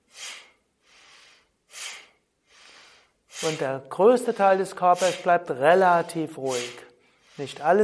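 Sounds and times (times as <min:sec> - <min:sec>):
forceful bhastrika yoga breathing exhalations and inhalations: 0:00.0 - 0:07.8
speech: 0:03.4 - 0:07.8.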